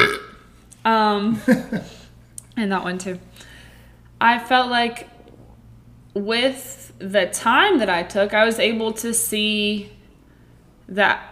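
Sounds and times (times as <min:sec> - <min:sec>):
loud burp: 0:00.0 - 0:00.5
speech: 0:00.8 - 0:02.0, 0:02.6 - 0:03.5, 0:04.2 - 0:05.1, 0:06.1 - 0:10.0, 0:10.9 - 0:11.3.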